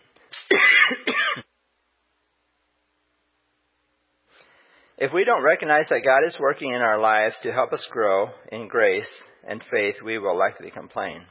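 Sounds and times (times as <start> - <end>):
person clearing throat: 0.5 - 1.5
speech: 5.0 - 11.2.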